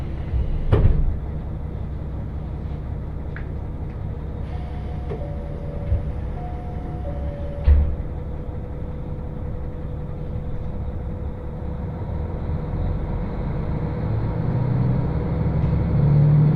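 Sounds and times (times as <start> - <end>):
KiHa 40 single-car train wheels and engine rumbling: 0.0 - 16.5
thin sustained whine: 4.4 - 11.8
knocks from the track: 7.2 - 8.0.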